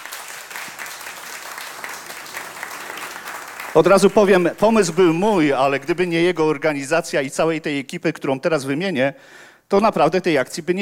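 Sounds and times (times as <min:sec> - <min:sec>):
audience applause for the concert organiser: 0:00.0 - 0:06.2
speech: 0:03.7 - 0:10.8.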